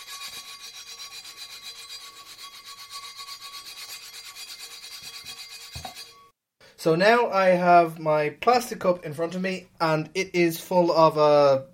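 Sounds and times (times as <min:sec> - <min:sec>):
old emery board nail file rubbing rust off the rim of an iron pot lid: 0:00.0 - 0:06.3
speech: 0:06.8 - 0:11.7.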